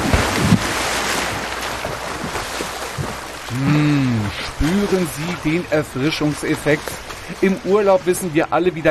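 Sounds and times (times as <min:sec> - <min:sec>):
splash of person jumping into the sea from the beach: 0:00.0 - 0:04.9
sea surf rushing and washing: 0:00.0 - 0:08.8
speech: 0:04.9 - 0:08.8.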